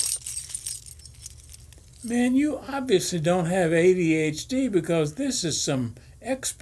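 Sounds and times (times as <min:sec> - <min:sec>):
bunch of keys jangling and clinking as unclipped: 0:00.0 - 0:02.3
speech: 0:02.0 - 0:06.5.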